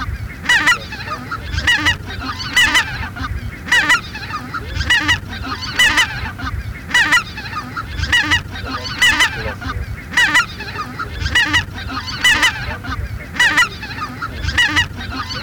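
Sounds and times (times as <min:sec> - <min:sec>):
greater white-fronted goose calls from a hunting decoy caller: 0:00.0 - 0:15.4.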